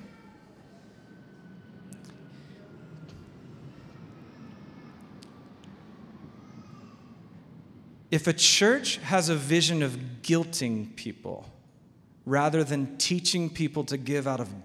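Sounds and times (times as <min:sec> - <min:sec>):
airplane passing overhead: 0:00.0 - 0:12.7
speech: 0:08.1 - 0:11.6, 0:12.3 - 0:14.6.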